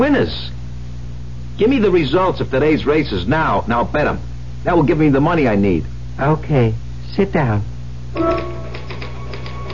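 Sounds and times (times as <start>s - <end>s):
speech: 0.0s - 0.6s, 1.6s - 8.6s
typewriter keys clacking: 8.2s - 9.7s.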